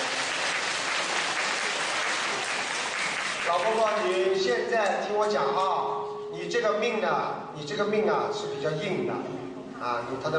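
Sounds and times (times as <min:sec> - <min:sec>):
audience applause: 0:00.0 - 0:04.4
speech: 0:03.5 - 0:10.3.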